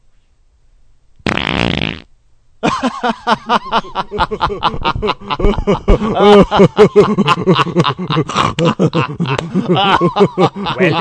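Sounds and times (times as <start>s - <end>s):
loud buzzy sputtering fart: 1.2s - 2.1s
laughter: 2.6s - 10.9s
speech: 2.8s - 10.9s.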